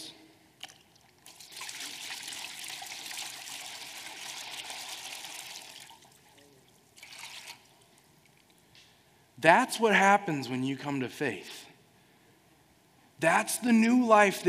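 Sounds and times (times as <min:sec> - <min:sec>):
water pouring from a pitcher: 0:00.6 - 0:08.4
speech: 0:09.4 - 0:11.7, 0:13.2 - 0:14.4.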